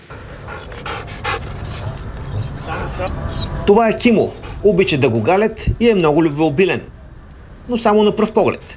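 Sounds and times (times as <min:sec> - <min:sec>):
trained dog panting during a special operations forces demonstration: 0:00.0 - 0:05.4
faint noise: 0:00.0 - 0:08.7
speech: 0:03.0 - 0:07.0, 0:07.7 - 0:08.7.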